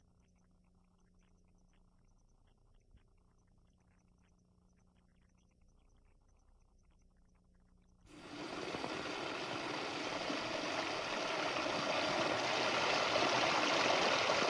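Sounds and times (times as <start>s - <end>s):
streams of water pouring into trash barrels fitted with electrodes: 8.1s - 14.4s.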